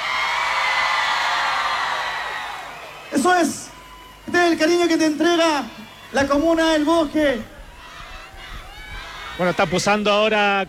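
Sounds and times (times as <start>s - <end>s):
large crowd shouting and cheering together: 0.0s - 10.6s
speech: 3.1s - 3.6s, 4.4s - 7.5s, 9.4s - 10.6s.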